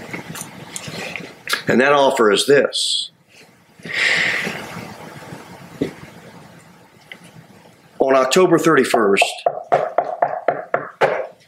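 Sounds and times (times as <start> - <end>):
speech: 1.6 - 3.1, 8.1 - 9.6
sharp knocks on a wooden-sounding door: 9.2 - 11.4.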